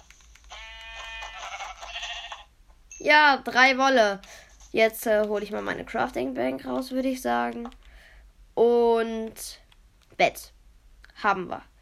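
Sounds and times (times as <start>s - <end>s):
sheep bleating in a video game: 0.5s - 2.5s
speech: 3.0s - 7.8s, 8.6s - 9.6s, 10.2s - 10.6s, 11.2s - 11.7s.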